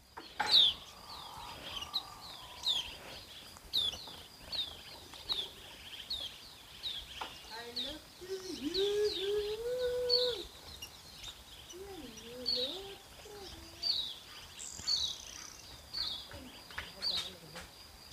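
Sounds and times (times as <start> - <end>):
birds chirping outdoors: 0.0 - 18.1.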